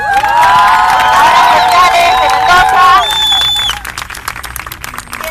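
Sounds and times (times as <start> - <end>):
crowd of women at a meeting cheering and whooping: 0.0 - 3.9
high shrill whistles: 1.0 - 3.8.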